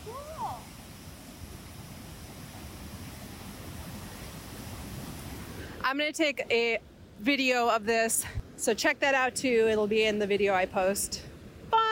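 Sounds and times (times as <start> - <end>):
rushing waterfall roaring with churning noise: 0.0 - 5.8
speech: 0.1 - 0.4, 5.8 - 11.3.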